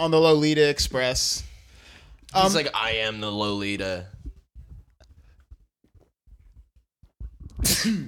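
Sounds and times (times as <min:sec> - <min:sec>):
speech: 0:00.0 - 0:01.5, 0:02.3 - 0:04.2, 0:07.6 - 0:08.0
breathing: 0:01.4 - 0:02.3
person sneezing: 0:07.6 - 0:08.0.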